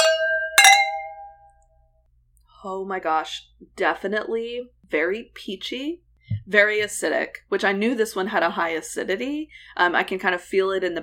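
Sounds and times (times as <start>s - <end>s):
wine glasses clinking in a toast: 0.0s - 1.6s
speech: 2.6s - 11.0s.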